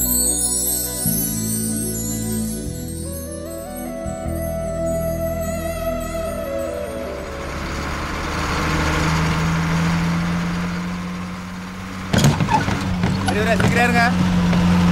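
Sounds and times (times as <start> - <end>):
bus engine droning at a low pitch: 0.0 - 14.9
people talking: 13.3 - 14.2.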